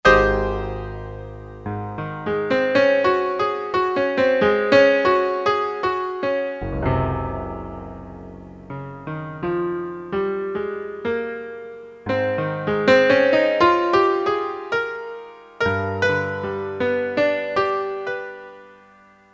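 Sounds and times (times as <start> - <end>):
16-foot synthesizer piano note: 0.0 - 18.6.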